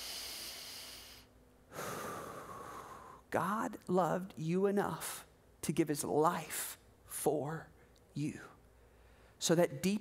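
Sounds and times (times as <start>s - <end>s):
deep breath drawn in and let out: 0.0s - 3.3s, 8.7s - 9.4s
speech: 3.3s - 8.6s, 9.4s - 9.9s.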